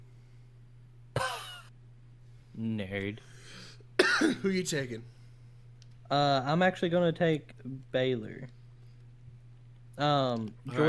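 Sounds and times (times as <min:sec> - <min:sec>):
low steady hum: 0:00.0 - 0:10.8
person coughing: 0:01.2 - 0:01.7, 0:04.0 - 0:04.5
speech: 0:02.6 - 0:03.6, 0:04.2 - 0:05.2, 0:06.1 - 0:08.6, 0:10.0 - 0:10.8.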